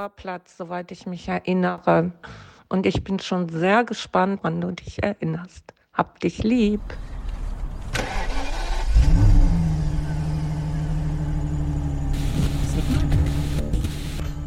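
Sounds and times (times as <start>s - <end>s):
speech: 0.0s - 7.1s
car engine climbing narrow mountain switchbacks near Limone: 6.8s - 14.4s.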